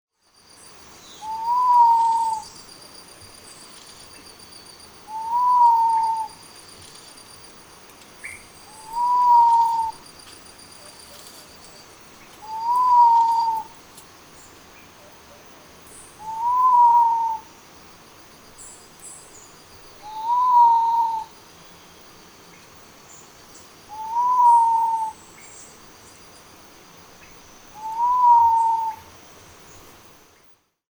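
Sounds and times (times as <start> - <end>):
sapphire dove calling: 1.2 - 2.6, 5.0 - 7.1, 8.0 - 14.1, 16.2 - 17.5, 20.0 - 21.4, 23.9 - 25.2, 27.7 - 29.1.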